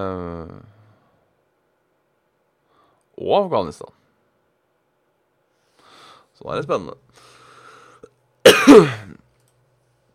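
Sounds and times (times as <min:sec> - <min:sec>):
speech: 0:00.0 - 0:00.8, 0:03.2 - 0:04.0, 0:06.4 - 0:07.3, 0:08.7 - 0:09.2
person coughing: 0:08.4 - 0:09.2.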